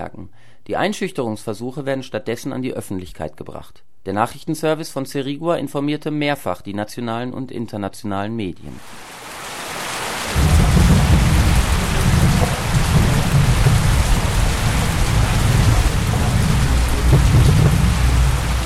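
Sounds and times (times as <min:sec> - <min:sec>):
speech: 0:00.0 - 0:09.3
heavy rain pouring down: 0:08.8 - 0:18.6
thunder rolling: 0:08.8 - 0:18.6.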